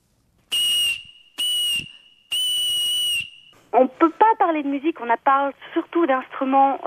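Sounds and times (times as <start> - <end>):
reindeer phalanx bone whistle being blown: 0.5 - 3.6
speech: 3.8 - 6.8.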